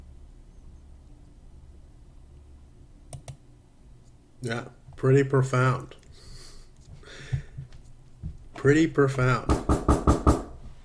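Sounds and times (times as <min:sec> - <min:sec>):
speech: 0:04.4 - 0:06.0, 0:08.6 - 0:09.6
firm knocking on a door: 0:09.5 - 0:10.6.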